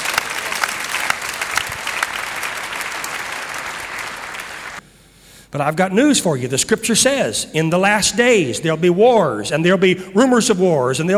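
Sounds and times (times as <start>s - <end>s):
audience clapping in praise to God: 0.0s - 4.8s
speech: 5.5s - 11.1s.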